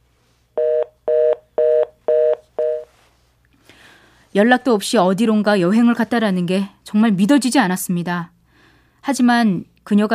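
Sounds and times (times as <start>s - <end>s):
telephone line tone beeps after a call ends: 0.6s - 2.9s
speech: 4.4s - 8.4s, 9.0s - 10.1s.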